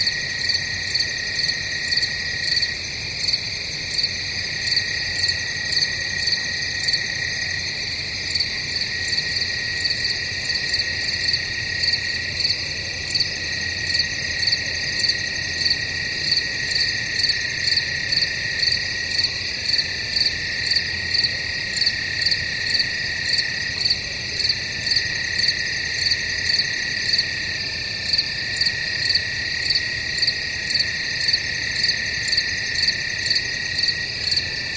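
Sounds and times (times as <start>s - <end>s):
crickets chirping in night woods: 0.0s - 34.7s.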